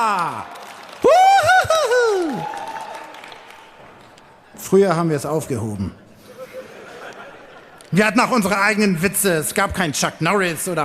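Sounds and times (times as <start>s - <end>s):
speech: 0.0s - 0.6s, 4.6s - 6.0s, 7.9s - 10.8s
loud drawn-out vocal whoop: 0.0s - 3.2s
crowd clapping: 0.0s - 4.5s
laughter: 6.2s - 8.4s.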